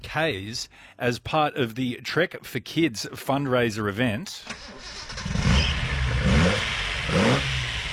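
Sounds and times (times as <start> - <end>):
speech: 0.0 - 5.3
1971 Datsun 240Z car engine revving: 4.6 - 7.9
1971 Datsun 240Z engine rough throaty idle: 5.3 - 7.9.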